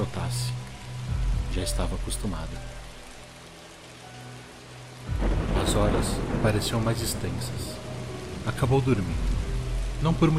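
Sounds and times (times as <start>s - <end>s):
torrential rain: 0.0s - 10.3s
speech: 1.6s - 2.8s, 5.8s - 7.8s, 8.4s - 9.4s, 10.0s - 10.3s
thunder: 5.1s - 9.6s.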